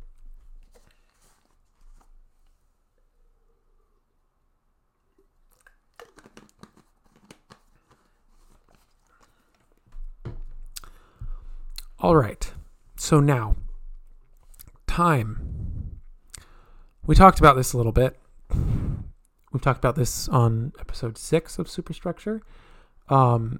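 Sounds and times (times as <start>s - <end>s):
faint crinkling: 0.0s - 3.4s, 5.0s - 12.0s
person sipping a drink of water, slurping and swallowing: 5.1s - 6.8s
speech: 12.0s - 13.6s, 15.0s - 15.4s, 17.1s - 18.7s, 19.6s - 23.5s.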